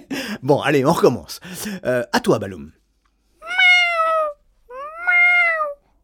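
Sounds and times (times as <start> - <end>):
speech: 0.4 - 2.8
cat meowing: 3.4 - 5.9.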